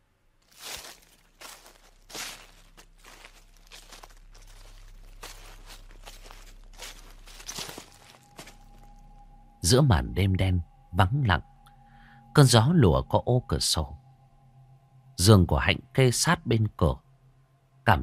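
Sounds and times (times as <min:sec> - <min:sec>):
steady low hum: 0:00.0 - 0:17.9
footsteps rustling through a garden at night: 0:00.4 - 0:09.1
speech: 0:09.7 - 0:11.5, 0:12.4 - 0:14.0, 0:15.2 - 0:17.0.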